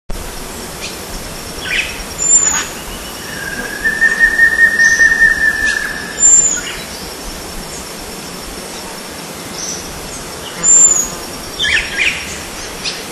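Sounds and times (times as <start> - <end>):
Tangara preciosa at Cruce Caballero: 1.6 - 7.0, 10.4 - 13.0.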